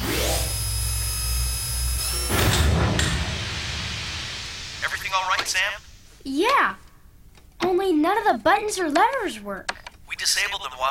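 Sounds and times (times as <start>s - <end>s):
motorized door closing with mechanical whine and thud: 0.0s - 4.1s
speech: 5.2s - 6.8s, 7.6s - 10.8s.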